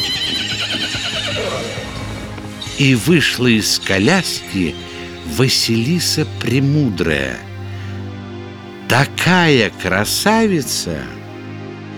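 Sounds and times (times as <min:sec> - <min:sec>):
six horses neighing while drawing a golden carriage: 0:00.0 - 0:07.8
speech: 0:02.8 - 0:07.5, 0:08.9 - 0:11.2.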